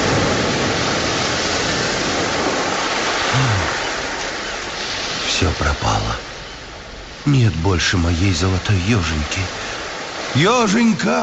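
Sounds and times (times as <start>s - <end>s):
stormy sea roaring: 0.0s - 11.2s
low moan: 3.3s - 3.8s
speech: 5.4s - 6.2s, 7.2s - 9.7s, 10.3s - 11.2s.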